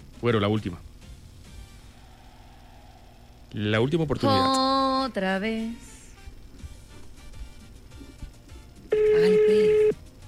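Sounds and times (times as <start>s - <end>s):
speech: 0.2s - 0.9s, 3.5s - 5.9s, 9.2s - 9.6s
telephone ringing, call going unanswered to voicemail: 8.9s - 10.0s.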